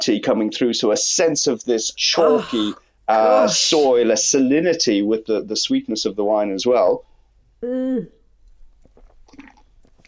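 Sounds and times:
speech: 0.0s - 8.2s
chewing bread: 8.7s - 10.0s.

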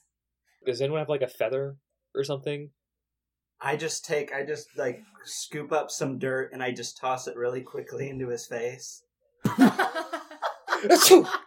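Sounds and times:
speech: 0.6s - 2.8s, 3.6s - 10.2s, 10.8s - 11.4s
laughter: 9.4s - 11.4s
person mimicking sneezes: 10.8s - 11.4s.

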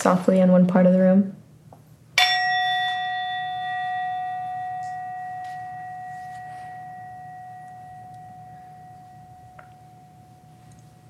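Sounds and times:
speech: 0.0s - 1.4s
room hum: 0.0s - 11.0s
singing bowl struck and ringing: 2.2s - 11.0s.

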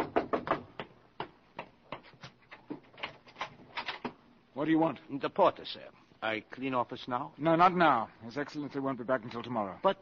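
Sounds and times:
knocking on an office door: 0.0s - 1.4s
speech: 4.6s - 10.0s.

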